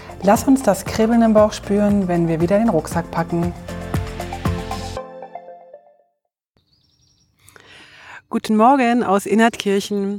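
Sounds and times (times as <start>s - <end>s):
speech: 0.2s - 3.8s, 8.4s - 10.1s
ringing musical chord: 4.8s - 6.1s
faint high bird chirps at a campsite in Innertkirchen: 6.6s - 7.6s.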